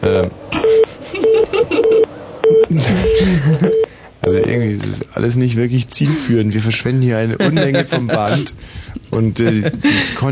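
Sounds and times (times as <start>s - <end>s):
speech: 0.0s - 0.4s, 2.7s - 10.3s
laughter: 0.5s - 2.1s, 2.7s - 3.9s, 7.3s - 8.6s, 9.2s - 10.3s
electronic telephone keypad tones: 0.6s - 2.7s.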